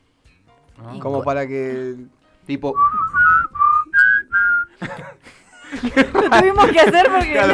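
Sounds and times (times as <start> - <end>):
speech: 0.8 - 3.6, 4.8 - 7.5
person whistling a birthday tune: 2.8 - 4.8
rough burst of voices or laughter: 4.7 - 7.5.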